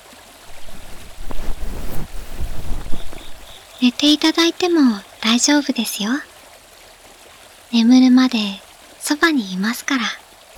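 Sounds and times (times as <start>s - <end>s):
faint breezy hiss: 0.0s - 6.0s
small waves lapping and sloshing at night: 0.0s - 10.5s
speech: 3.8s - 6.3s, 7.7s - 10.2s.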